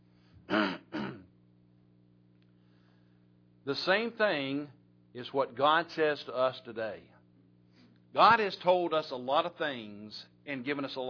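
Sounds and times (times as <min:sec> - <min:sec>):
person clearing throat: 0:00.5 - 0:01.3
speech: 0:03.7 - 0:07.2, 0:08.1 - 0:11.0.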